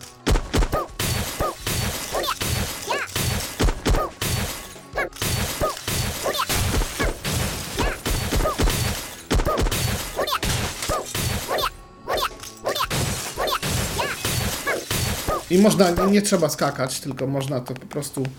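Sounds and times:
glass walls being smashed in a video game: 1.0s - 11.7s, 12.9s - 16.2s
speech: 15.6s - 18.3s.

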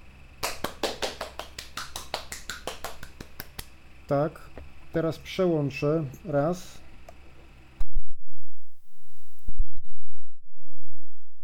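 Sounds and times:
sharp hand claps: 0.4s - 3.7s
speech: 4.1s - 6.8s.

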